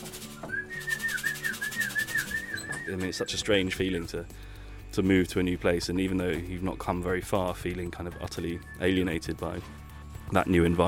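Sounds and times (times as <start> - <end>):
person whistling to call pigeons: 0.3 - 3.3, 8.4 - 9.2
speech: 2.9 - 10.8.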